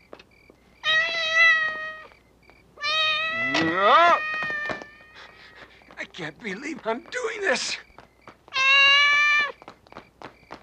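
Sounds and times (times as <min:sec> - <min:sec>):
cat meowing: 0:00.8 - 0:02.2, 0:02.8 - 0:05.2, 0:08.5 - 0:09.6
speech: 0:06.2 - 0:07.9.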